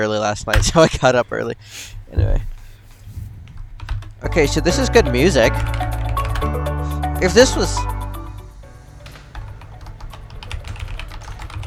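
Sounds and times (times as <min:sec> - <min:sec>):
speech: 0:00.0 - 0:02.5, 0:04.2 - 0:05.8, 0:07.2 - 0:07.9
two people typing on mechanical keyboards: 0:03.5 - 0:06.6, 0:08.8 - 0:11.6.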